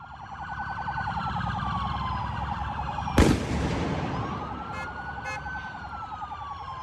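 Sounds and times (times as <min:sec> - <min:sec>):
police sirens wailing: 0:00.0 - 0:06.8
rumbling street scene in Chicago: 0:00.0 - 0:06.8
loud firework bang: 0:03.2 - 0:04.6.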